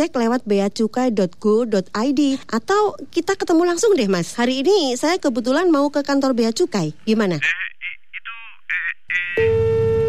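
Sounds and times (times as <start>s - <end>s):
speech: 0.0s - 7.7s
telephone tone after a scam call is hung up: 9.4s - 10.0s.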